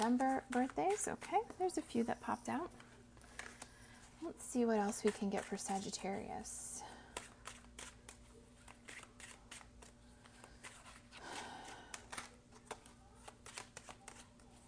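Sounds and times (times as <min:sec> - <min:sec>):
tarot cards being shuffled: 0:00.0 - 0:01.8, 0:02.7 - 0:03.8, 0:07.1 - 0:14.6
speech: 0:00.0 - 0:02.9, 0:04.2 - 0:07.0.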